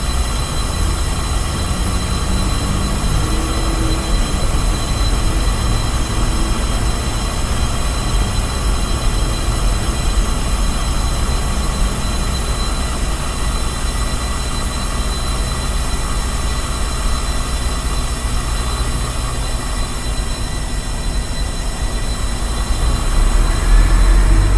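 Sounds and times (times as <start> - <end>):
gas pipes giving off a dense mechanical roar with low rumble: 0.0 - 15.0, 22.0 - 24.5
thin unchanging high whining tones: 0.0 - 24.5.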